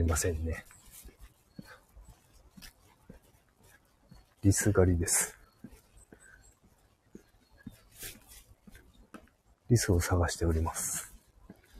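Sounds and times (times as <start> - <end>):
speech: 0.0 - 0.8, 4.4 - 5.4, 9.7 - 11.1
rustling and crackling in undergrowth: 0.0 - 6.1, 6.9 - 11.7
faint bird chirps: 0.0 - 11.7.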